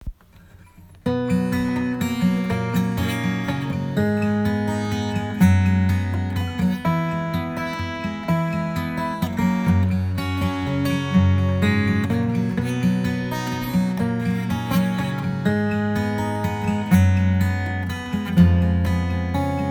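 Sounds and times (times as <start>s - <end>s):
Martin GJ12-40 twelve-string acoustic guitar fingerpicked: 0.0s - 19.6s.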